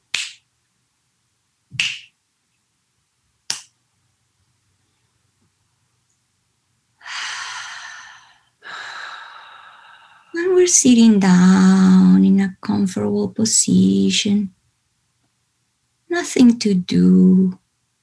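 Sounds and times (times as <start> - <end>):
fingers snapping: 0.1 - 0.4, 1.8 - 2.1, 3.5 - 3.8
long breathy exhales: 7.0 - 10.4
speech: 10.6 - 14.6, 16.3 - 17.6.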